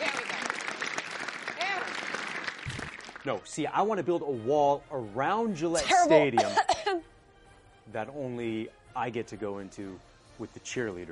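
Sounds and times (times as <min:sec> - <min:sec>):
crowd applause: 0:00.0 - 0:03.3
speech: 0:03.2 - 0:07.1, 0:07.9 - 0:11.0.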